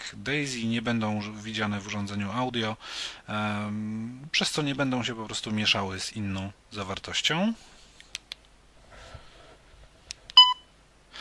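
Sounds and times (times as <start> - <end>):
speech: 0.1 - 7.7
soft clicks: 8.0 - 8.6
short bright electronic device beep: 10.4 - 10.6.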